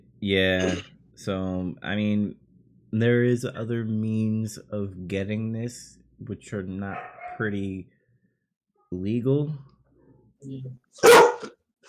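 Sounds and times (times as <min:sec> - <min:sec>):
speech: 0:00.2 - 0:08.0, 0:08.9 - 0:09.7, 0:10.4 - 0:11.5
pet dog barking while being played with: 0:06.9 - 0:07.5, 0:11.0 - 0:11.6.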